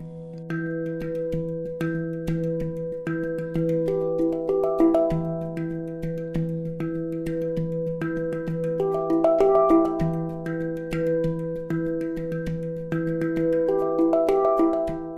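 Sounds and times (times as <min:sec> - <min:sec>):
hang handpan notes ringing: 0:00.0 - 0:15.1.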